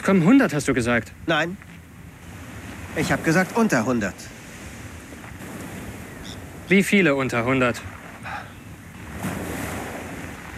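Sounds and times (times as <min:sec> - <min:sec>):
speech: 0:00.0 - 0:01.7, 0:03.0 - 0:04.4, 0:06.7 - 0:08.4
gusty wind: 0:00.0 - 0:10.5
sea waves breaking on the shore: 0:00.0 - 0:10.5.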